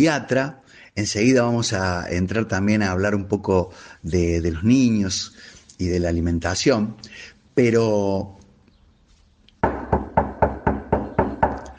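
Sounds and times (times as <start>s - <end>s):
speech: 0.0s - 8.4s
firm knocking on a door: 9.6s - 11.6s.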